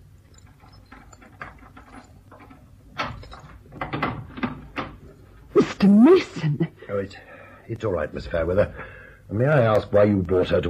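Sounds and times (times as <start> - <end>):
skeleton keys scratching and rattling in a door lock: 0.2 - 5.2
speech: 5.8 - 10.6.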